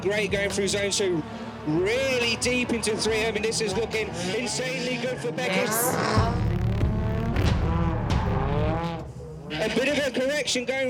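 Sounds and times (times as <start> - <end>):
speech: 0.0 - 6.5, 9.6 - 10.8
drift car engine roaring on the throttle while sliding: 4.2 - 10.2.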